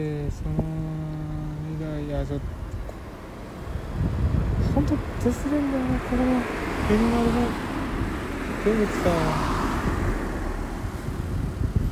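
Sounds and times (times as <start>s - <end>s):
speech: 0.0s - 0.8s, 1.8s - 2.6s, 4.0s - 7.6s, 8.6s - 9.5s
wind noise: 0.0s - 11.9s
car passing on a nearby street: 2.8s - 11.9s.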